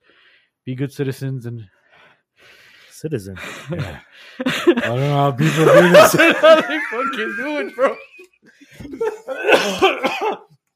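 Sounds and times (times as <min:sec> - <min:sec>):
speech: 0:00.7 - 0:01.8, 0:02.4 - 0:10.5
laughter: 0:03.4 - 0:10.4
person giving throaty voiced coughs: 0:08.9 - 0:10.5.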